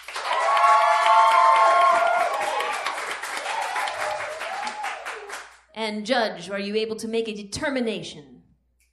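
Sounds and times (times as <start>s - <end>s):
debate audience whooping and cheering: 0.0s - 5.5s
large debate audience applauding: 0.0s - 5.6s
speech: 5.8s - 8.3s.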